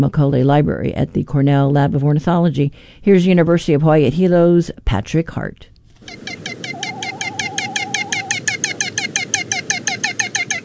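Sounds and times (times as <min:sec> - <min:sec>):
speech: 0:00.0 - 0:05.7
great frigatebird mating call: 0:06.0 - 0:10.6.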